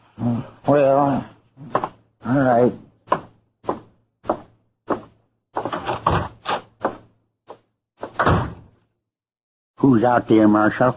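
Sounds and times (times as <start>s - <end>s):
speech: 0.2s - 2.8s, 9.8s - 10.9s
back door thumping: 3.1s - 7.1s, 8.0s - 8.8s
back door rattling and clattering: 5.6s - 6.6s, 8.1s - 8.7s
back door shutting with a heavy thud: 5.6s - 7.0s, 8.0s - 8.8s.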